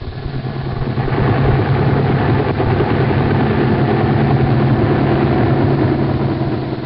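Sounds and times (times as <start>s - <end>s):
helicopter engine and rotor: 0.0s - 6.8s.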